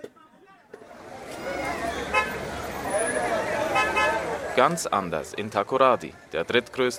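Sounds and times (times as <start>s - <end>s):
busy street traffic around a central market with jammed taxis: 0.0s - 6.9s
murmur of crowd voices: 0.0s - 6.9s
taxi car horns tooting: 1.4s - 4.4s
speech: 4.6s - 6.9s.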